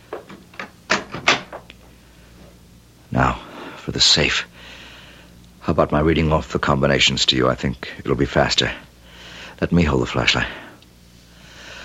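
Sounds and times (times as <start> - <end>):
door being closed with clunks, rattles and thuds: 0.2 - 1.7
speech: 4.0 - 4.8, 5.6 - 8.8, 9.6 - 10.6.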